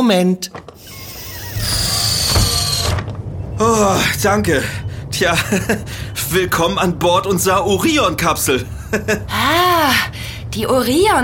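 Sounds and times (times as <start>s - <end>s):
speech: 0.0s - 1.0s, 3.6s - 11.2s
hatch door of a space capsule sliding shut: 0.5s - 3.2s
laughter: 5.0s - 6.4s, 8.6s - 9.5s.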